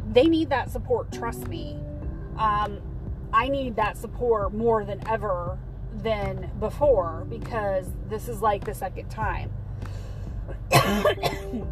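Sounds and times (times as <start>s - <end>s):
speech: 0.2s - 10.0s, 10.7s - 11.7s
harsh coughs: 10.7s - 11.6s.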